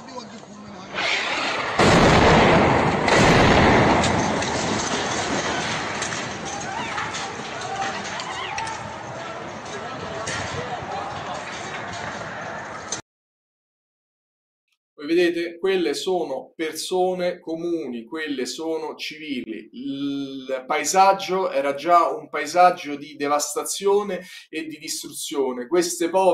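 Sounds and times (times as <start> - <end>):
bombardment booming and rumbling: 0.7 - 12.9
speech: 15.4 - 26.3.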